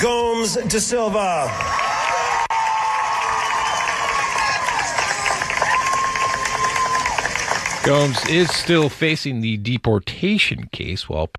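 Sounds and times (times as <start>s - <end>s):
speech: 0.0s - 2.2s, 7.8s - 11.3s
large crowd cheering and clapping at a graduation ceremony: 1.1s - 9.2s
whistles from a graduation ceremony crowd: 3.4s - 4.1s.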